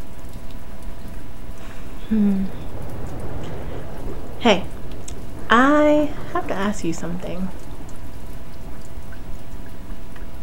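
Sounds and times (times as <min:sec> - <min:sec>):
heavy rain pouring outside: 0:00.0 - 0:10.4
speech: 0:02.1 - 0:02.6, 0:04.4 - 0:04.8, 0:05.5 - 0:07.6.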